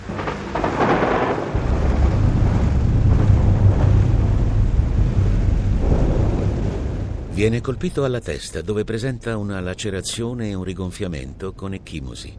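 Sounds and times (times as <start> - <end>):
deep rolling thunder: 0.0 - 9.3
steady rain: 0.0 - 12.0
speech: 7.4 - 12.3.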